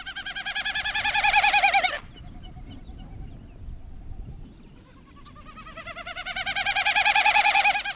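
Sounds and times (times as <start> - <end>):
Wilson's snipe winnowing wing flutter in flight: 0.0 - 2.5, 4.8 - 7.9.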